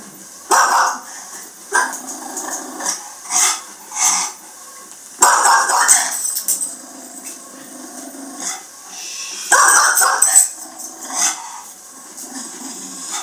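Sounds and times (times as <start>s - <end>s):
dog barking at a man: 0.5s - 1.0s, 5.2s - 6.2s, 9.5s - 10.5s
dog yipping: 9.5s - 10.4s.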